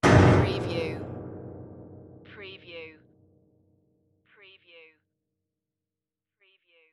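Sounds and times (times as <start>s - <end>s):
horror piano smash: 0.0s - 3.4s.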